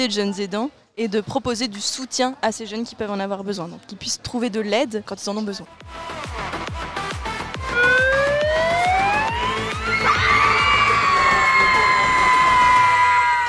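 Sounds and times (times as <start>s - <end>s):
speech: 0.0s - 6.6s
rhythmic thuds: 5.8s - 10.0s
loud siren winding up and wailing: 7.6s - 12.7s
crowd of young people screaming and shouting: 7.6s - 13.4s.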